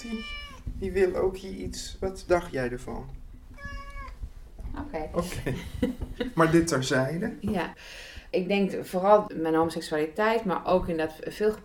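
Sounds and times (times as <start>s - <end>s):
cat meowing: 0.0s - 0.7s, 3.5s - 4.2s
speech: 0.0s - 3.2s, 4.8s - 11.6s.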